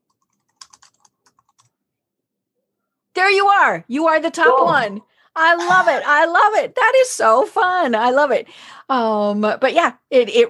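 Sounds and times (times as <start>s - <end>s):
typing a search on a computer keyboard: 0.0s - 1.7s
speech: 3.2s - 10.4s.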